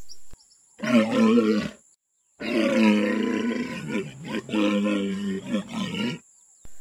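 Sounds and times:
male walrus deep rumbling roar-like calls: 0.8s - 1.8s, 2.4s - 6.2s.

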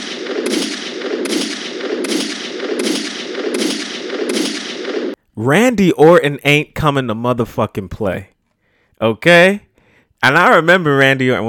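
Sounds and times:
gunshot sound effects: 0.0s - 5.2s
speech: 5.4s - 8.3s, 9.0s - 11.4s.

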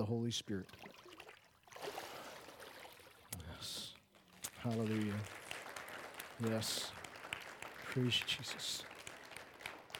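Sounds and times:
speech: 0.0s - 1.0s, 4.6s - 5.4s, 6.4s - 7.0s, 7.9s - 8.9s
water splashing during baptism immersion: 0.5s - 3.3s.

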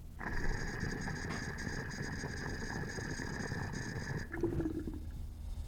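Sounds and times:
water gurgling as glass double diffuser drains: 0.2s - 5.5s.

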